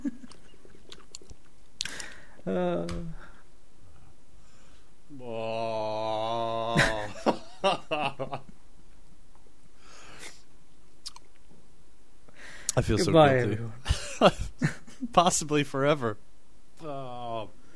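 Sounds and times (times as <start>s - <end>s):
person chewing a spoonful of food with wet smacking: 0.3s - 1.6s
speech: 2.4s - 3.2s, 12.8s - 14.4s, 15.2s - 16.3s
person making drawn-out whimpering hums: 2.4s - 3.3s, 5.3s - 7.1s
laughter: 6.6s - 8.4s.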